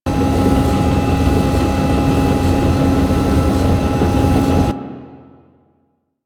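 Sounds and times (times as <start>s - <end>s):
galleon machine loop: 0.1s - 4.8s.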